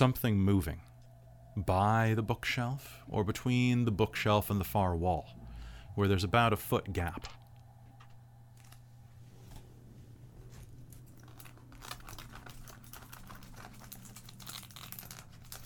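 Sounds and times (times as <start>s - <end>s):
speech: 0.0s - 0.9s, 1.6s - 5.4s, 6.0s - 7.4s
steady low hum: 0.0s - 15.6s
paper crinkling and rustling: 10.4s - 15.6s.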